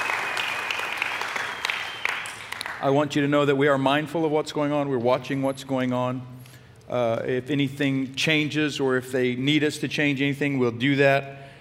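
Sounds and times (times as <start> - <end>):
church congregation clapping in praise during a morning service: 0.0 - 3.1
speech: 2.8 - 6.3, 6.9 - 11.4.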